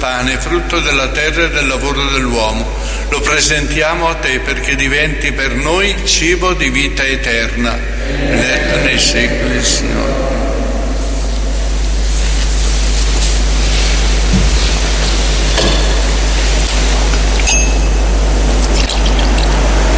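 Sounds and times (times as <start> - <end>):
speech: 0.0 - 10.4
low room hum: 0.0 - 19.9
steady hiss: 5.8 - 17.3
water poured into a chalice of wine: 16.0 - 19.8.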